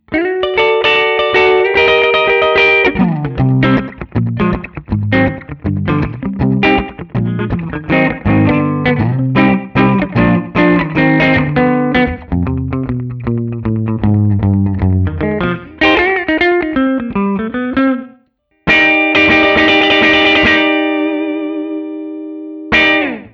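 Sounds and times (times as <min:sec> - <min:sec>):
Westerly-made Guild Starfire III guitar playing rockabilly: 0:00.0 - 0:23.3.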